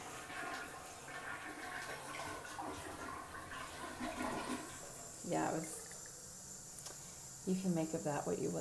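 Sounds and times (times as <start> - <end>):
toilet flushing: 0.0 - 6.1
speech: 5.3 - 5.8, 7.4 - 8.5.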